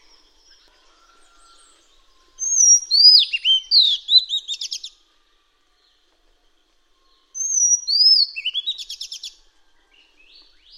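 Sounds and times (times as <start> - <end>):
Madagascar magpie-robin singing: 0.0 - 5.0, 7.3 - 10.7.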